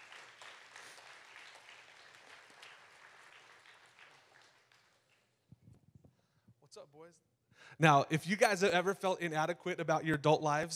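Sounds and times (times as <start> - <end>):
audience applause: 0.0 - 5.2
speech: 6.8 - 10.7.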